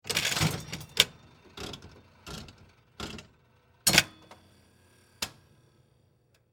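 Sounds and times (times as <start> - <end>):
slot machine lever pull: 0.1 - 1.2
mechanical slot machine reels spinning and stopping: 0.1 - 2.8.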